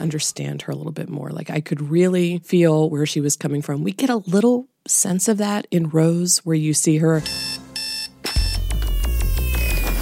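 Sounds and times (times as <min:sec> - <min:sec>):
speech: 0:00.0 - 0:07.6
electronic alarm clock beeping: 0:07.2 - 0:10.0
music with steady beat: 0:07.2 - 0:10.0.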